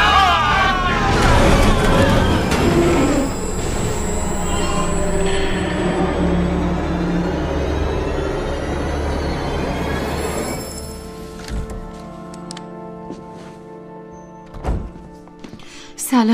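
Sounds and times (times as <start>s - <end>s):
subway train rumbling and slowing at a station: 0.0s - 12.0s.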